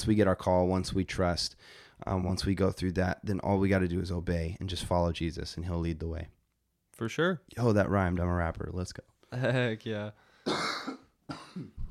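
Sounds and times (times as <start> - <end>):
speech: 0.0 - 6.4, 7.0 - 11.8
harsh rasping coughs: 10.4 - 11.8.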